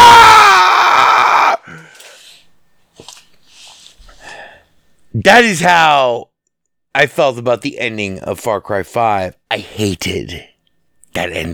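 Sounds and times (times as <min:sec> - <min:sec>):
voice imitating a video game character screaming: 0:00.0 - 0:01.7
breathy mouth noises: 0:02.0 - 0:04.4
speech: 0:05.2 - 0:06.3, 0:06.9 - 0:10.5, 0:11.1 - 0:11.5.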